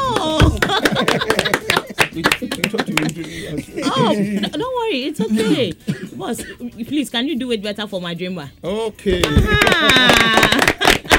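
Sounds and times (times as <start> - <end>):
group of people clapping their hands: 0.0 - 3.4, 9.2 - 11.1
laughter: 0.0 - 5.7, 9.2 - 11.1
speech: 0.2 - 1.6, 3.2 - 10.7.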